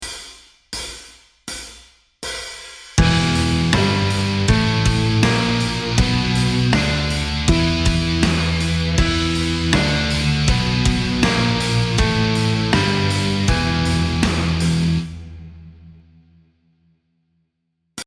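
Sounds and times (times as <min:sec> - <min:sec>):
E blues minor pentatonic flat five scale melody: 0:03.0 - 0:15.7.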